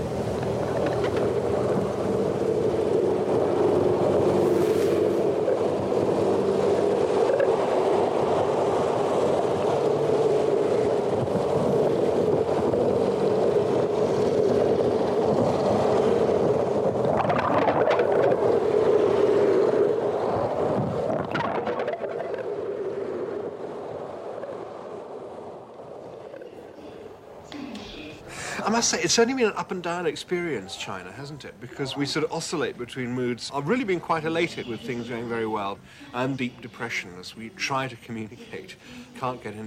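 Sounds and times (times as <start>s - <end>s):
underwater roar of ship engines and propellers: 0.0s - 28.6s
another vessel passing underwater: 0.0s - 37.6s
speech: 28.8s - 39.6s.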